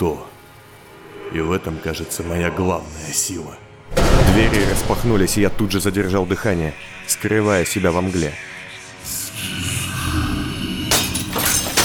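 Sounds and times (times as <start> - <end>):
speech: 0.0 - 0.2, 1.3 - 9.6
bright bursts of breaking glass: 10.9 - 11.8
glass mirrors cracking and shattering into dust: 10.9 - 11.8.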